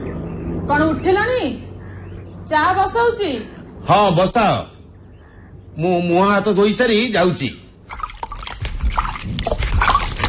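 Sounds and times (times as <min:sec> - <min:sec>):
speech: 0:00.7 - 0:01.7, 0:02.5 - 0:04.7, 0:05.8 - 0:08.0
water filling a pitcher: 0:07.9 - 0:10.2.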